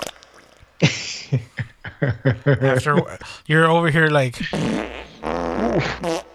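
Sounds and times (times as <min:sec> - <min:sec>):
voice blowing a raspberry imitating a fart: 0:00.0 - 0:00.2, 0:04.4 - 0:06.3
laughter: 0:00.8 - 0:03.4, 0:04.2 - 0:06.1
speech: 0:00.8 - 0:04.8, 0:05.7 - 0:06.2.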